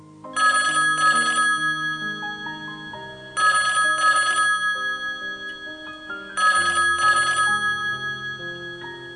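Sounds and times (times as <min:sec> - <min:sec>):
soft sustained musical backdrop: 0:00.0 - 0:09.1
old-fashioned telephone bell ringing: 0:00.4 - 0:09.1.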